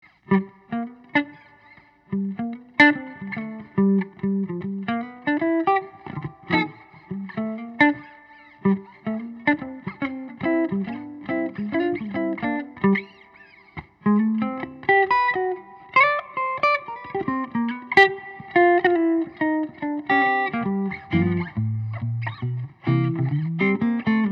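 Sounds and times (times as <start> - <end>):
electric archtop guitar of wenge and spruce through an amp: 0.0 - 24.3.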